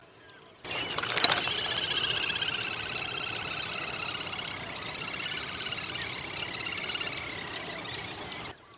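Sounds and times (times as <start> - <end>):
little grebe calling in Malim Nawar Perak Malaysia: 0.7 - 8.5.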